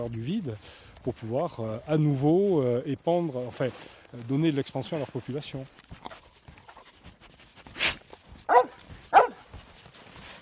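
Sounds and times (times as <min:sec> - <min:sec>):
speech: 0:00.0 - 0:06.2
breathy rustle: 0:00.0 - 0:10.4
dog giving short sharp barks: 0:08.5 - 0:09.5.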